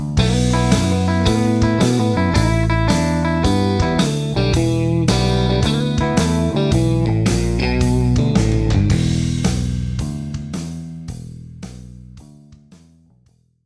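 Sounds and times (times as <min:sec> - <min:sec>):
triplet-based blues turnaround line on guitar: 0:00.2 - 0:10.8.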